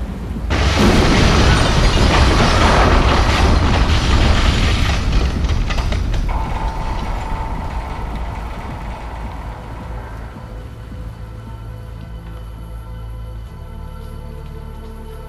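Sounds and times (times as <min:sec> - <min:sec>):
crackling debris: 0:00.4 - 0:12.8
loud explosion: 0:00.5 - 0:11.2
heavy rumbling roar: 0:00.5 - 0:11.7.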